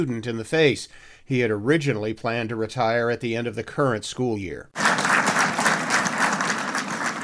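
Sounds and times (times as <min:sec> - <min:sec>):
speech: 0:00.0 - 0:04.9
crowd at a school board meeting applauding: 0:04.8 - 0:07.2.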